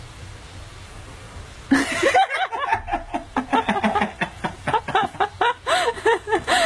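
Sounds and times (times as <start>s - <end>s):
orangutan laughing in breathy voiced bursts: 1.7s - 6.6s.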